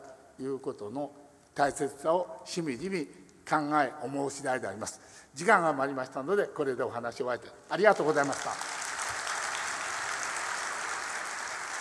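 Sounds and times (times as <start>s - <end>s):
speech: 0.4s - 8.7s
audience applause after a talk: 8.0s - 11.7s.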